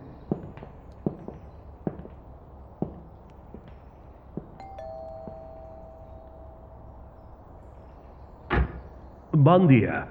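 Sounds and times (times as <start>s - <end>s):
soft two-tone doorbell chime: 4.6s - 7.4s
speech: 9.4s - 10.0s.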